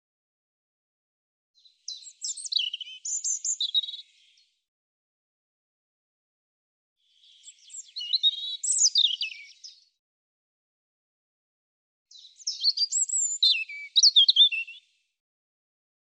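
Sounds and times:
European robin singing: 0:01.6 - 0:04.4, 0:07.1 - 0:10.0, 0:12.1 - 0:14.9.

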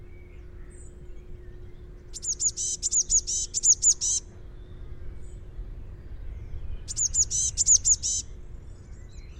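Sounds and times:
low background hum: 0:00.0 - 0:09.3
Eurasian blue tit chattering: 0:02.1 - 0:04.2, 0:06.9 - 0:08.2.

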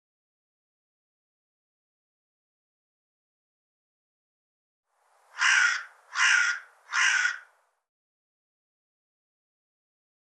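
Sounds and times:
bird cawing: 0:05.3 - 0:07.6.

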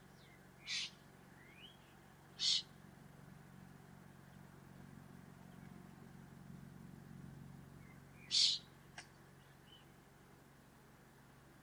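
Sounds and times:
steady low hum: 0:00.0 - 0:11.6
harsh high bird calls: 0:00.2 - 0:02.7, 0:07.8 - 0:08.7.

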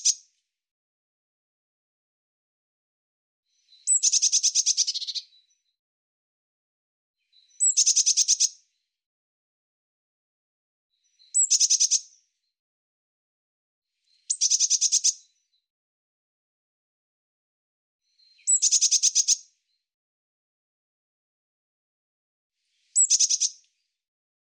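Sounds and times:
bird singing high thin buzzy phrases: 0:03.6 - 0:05.6, 0:07.3 - 0:08.6, 0:11.0 - 0:12.2, 0:14.1 - 0:15.4, 0:18.1 - 0:19.4, 0:22.8 - 0:23.6.

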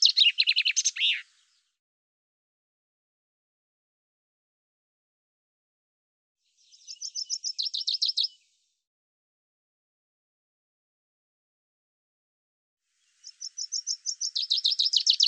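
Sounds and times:
common chaffinch song: 0:00.0 - 0:01.8, 0:06.4 - 0:08.8, 0:12.9 - 0:15.2.

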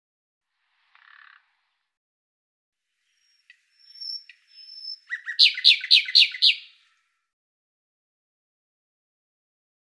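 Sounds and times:
bird calls with a thin high whistle and downward-sliding chirps: 0:03.2 - 0:06.8.

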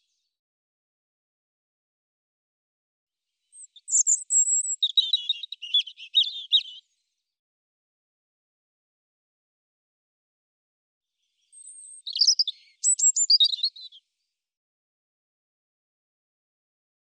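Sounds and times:
European robin twittering: 0:03.6 - 0:06.8, 0:11.5 - 0:14.0.

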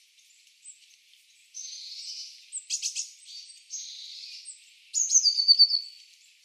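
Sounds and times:
Eurasian blue tit calls: 0:00.0 - 0:06.4.

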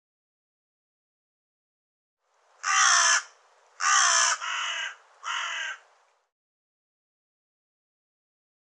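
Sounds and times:
bird harsh caw calls: 0:02.6 - 0:05.8.

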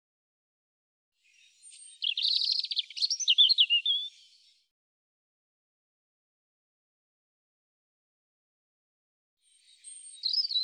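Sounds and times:
European robin singing: 0:01.2 - 0:04.7, 0:09.5 - 0:10.6.

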